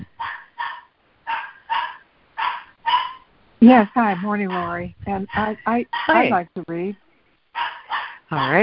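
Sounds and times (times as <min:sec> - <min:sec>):
dog barking sharply: 0:00.2 - 0:03.3, 0:07.6 - 0:08.6
speech: 0:03.6 - 0:07.0, 0:08.3 - 0:08.6.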